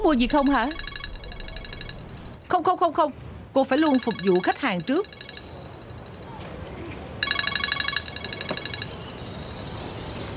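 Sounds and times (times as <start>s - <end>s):
speech: 0.0s - 0.9s, 2.5s - 5.2s
telephone ringing with an electronic trill: 0.0s - 2.4s, 3.8s - 6.4s, 7.2s - 9.2s
steady low hum: 0.0s - 10.3s.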